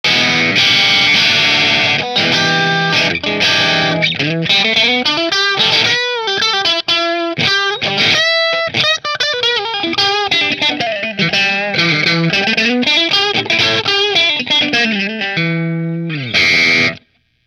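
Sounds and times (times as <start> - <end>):
electric guitar through an amplifier: 0.0 - 17.4.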